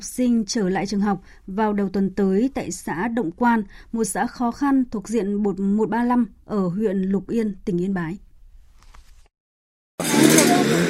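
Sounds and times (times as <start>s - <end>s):
speech: 0.1s - 8.3s, 10.5s - 10.8s
grass cutter engine starting up and running: 10.0s - 10.8s.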